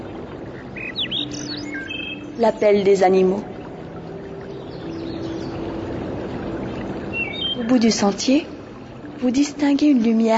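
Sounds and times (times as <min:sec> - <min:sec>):
birds chirping and singing: 0:00.5 - 0:03.1, 0:04.4 - 0:05.9, 0:06.6 - 0:08.1
speech: 0:02.4 - 0:03.5, 0:07.6 - 0:08.5, 0:09.2 - 0:10.3.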